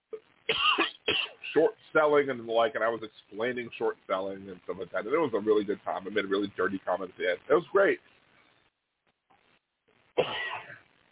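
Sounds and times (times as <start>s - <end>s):
loud cough: 0.5s - 1.7s, 10.2s - 10.8s
speech: 1.5s - 8.2s.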